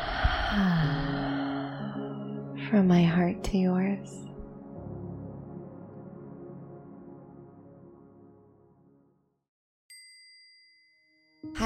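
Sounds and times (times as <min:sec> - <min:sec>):
deep exhale during a guided meditation: 0:00.0 - 0:02.4
speech: 0:02.7 - 0:04.3.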